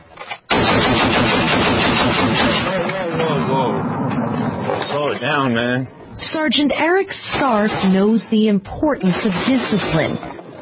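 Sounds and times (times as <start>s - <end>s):
machine-gun test firing by American soldiers at a mountain outpost: 0.5s - 4.8s, 7.3s - 8.1s, 9.0s - 10.4s
speech: 5.2s - 10.6s.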